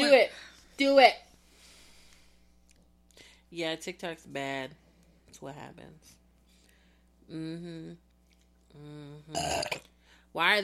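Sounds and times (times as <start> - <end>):
speech: 0.2 - 1.2, 3.5 - 6.2, 7.3 - 8.0, 8.7 - 10.6
drawn-out throaty burps: 9.3 - 9.9.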